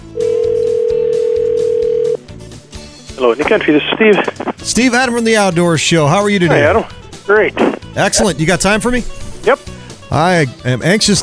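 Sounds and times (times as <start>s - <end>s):
telephone dial tone: 0.2s - 2.2s
speech: 3.2s - 11.2s.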